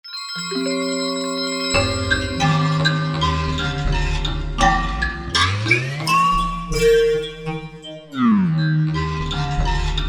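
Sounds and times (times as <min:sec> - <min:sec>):
Bali On Vari synthesizer patch on V-Synth: 0:00.1 - 0:09.9.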